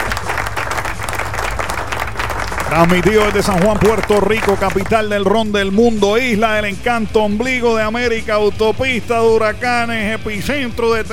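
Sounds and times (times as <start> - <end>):
applause from many hands: 0.0 - 5.2
speech: 2.7 - 11.1.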